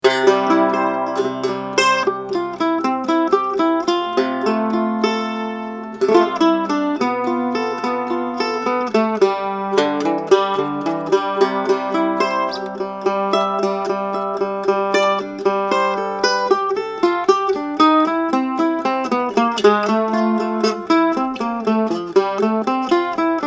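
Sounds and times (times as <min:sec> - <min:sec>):
mandola playing blues: 0:00.0 - 0:23.4.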